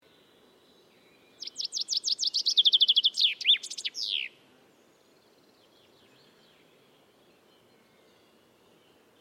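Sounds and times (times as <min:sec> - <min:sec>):
common chaffinch Fringilla coelebs singing: 0:00.1 - 0:09.1.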